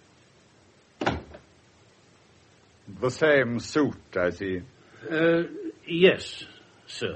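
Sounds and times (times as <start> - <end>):
solid thud of a door being shut: 1.0 - 1.5
speech: 2.9 - 7.1.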